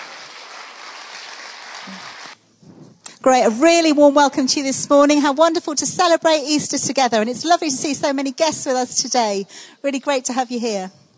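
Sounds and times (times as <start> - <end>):
audience applause: 0.0 - 2.4
speech: 1.8 - 2.2, 3.2 - 11.0.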